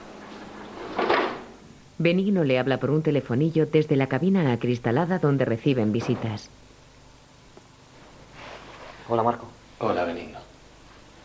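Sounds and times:
steady low hiss: 0.0 - 11.2
iron door closing at a prison on a rainy day: 0.4 - 1.6
speech: 2.0 - 6.6, 9.1 - 10.3.

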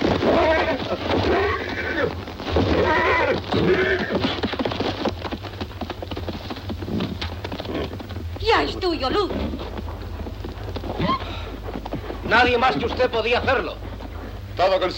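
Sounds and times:
horse whinnying: 0.0 - 4.7, 6.9 - 8.1, 10.9 - 11.6
horse trotting in circles, hooves: 0.0 - 14.9
low rumble of noise: 0.0 - 14.9
speech: 8.8 - 9.4, 12.3 - 13.8, 14.6 - 14.9.

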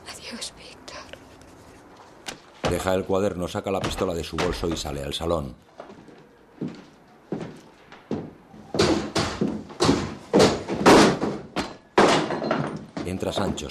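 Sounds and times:
speech: 2.7 - 5.8, 13.2 - 13.6
heavy pounding on a door: 8.7 - 12.8.

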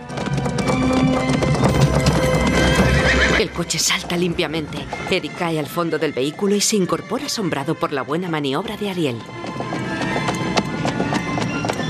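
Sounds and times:
horse galloping across open countryside: 0.0 - 11.8
speech: 3.6 - 9.5.

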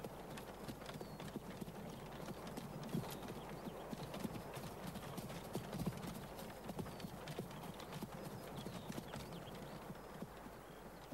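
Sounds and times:
horse hooves clip-clopping as a horse-drawn cart arrives in a village: 0.0 - 11.1.

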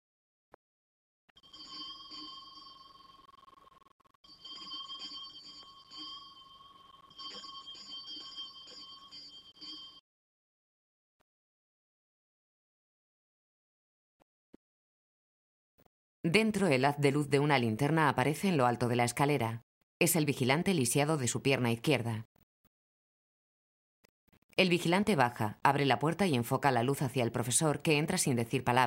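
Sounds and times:
small pull-bell at a secondary-school entrance door jangling: 4.3 - 10.0
speech: 16.2 - 22.4, 24.6 - 28.8.

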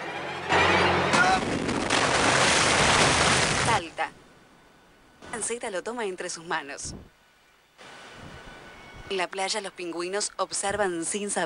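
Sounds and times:
large ocean wave crashing at a rocky spot: 1.1 - 3.8
speech: 5.5 - 7.2, 9.1 - 11.4.

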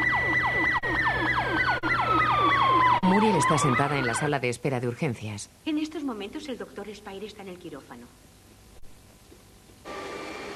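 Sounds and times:
ambulance siren yelping: 0.0 - 4.4
speech: 3.4 - 8.3.

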